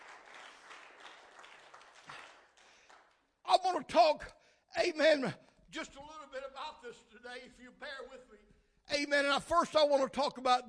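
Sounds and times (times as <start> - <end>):
crowd applause: 0.0 - 3.2
speech: 3.7 - 10.6.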